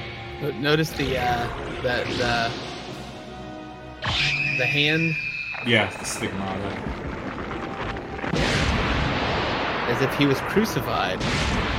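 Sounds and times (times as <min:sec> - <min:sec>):
speech: 0:00.4 - 0:03.0, 0:04.1 - 0:07.2, 0:09.9 - 0:11.6
loud explosion in an anime scene: 0:05.6 - 0:11.7.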